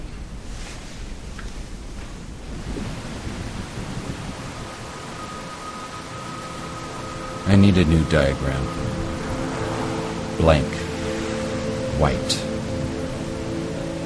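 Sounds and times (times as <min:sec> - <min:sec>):
constant hiss of rain: 0:00.0 - 0:14.0
deep rolling thunder in an outdoor thunderstorm: 0:02.2 - 0:11.5
speech: 0:07.5 - 0:09.0, 0:10.4 - 0:10.8, 0:12.0 - 0:12.4.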